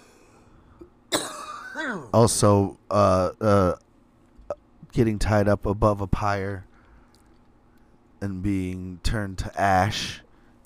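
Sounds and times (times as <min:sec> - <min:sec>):
person coughing harshly after inhaling a piece of wheat: 0:01.1 - 0:02.1
speech: 0:01.8 - 0:03.8, 0:04.9 - 0:06.7, 0:08.2 - 0:10.2.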